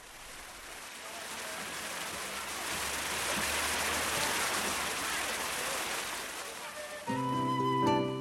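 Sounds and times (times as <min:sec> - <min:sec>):
water fountain spraying in front of a gate: 0:00.0 - 0:08.0.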